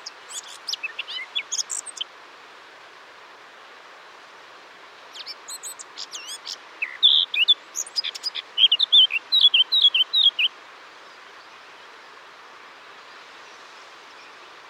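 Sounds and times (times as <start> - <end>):
Eurasian blackcap Sylvia atricapilla singing: 0.0 - 2.1, 5.2 - 10.5.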